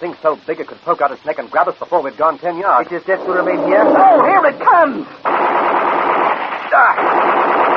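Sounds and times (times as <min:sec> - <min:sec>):
speech: 0:00.0 - 0:05.7
machine gun fire: 0:04.6 - 0:07.7.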